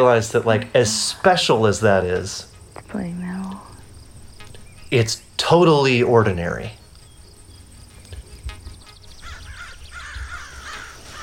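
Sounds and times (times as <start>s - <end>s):
speech: 0.0s - 3.4s, 4.9s - 6.8s
crow cawing outdoors: 9.2s - 11.2s.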